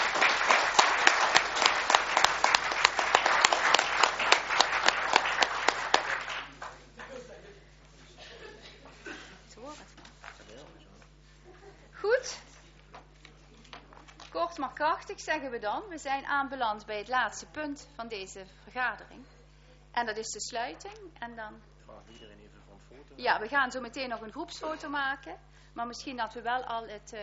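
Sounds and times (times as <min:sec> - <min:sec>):
people at a meeting applauding: 0:00.0 - 0:07.4
laughter: 0:00.0 - 0:09.2, 0:11.3 - 0:12.0
speech: 0:14.8 - 0:19.4, 0:20.0 - 0:27.2.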